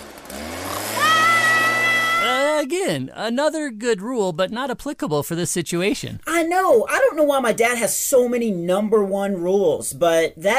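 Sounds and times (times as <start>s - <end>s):
leaf blower engine droning and revving: 0.0s - 2.7s
speech: 2.9s - 10.5s.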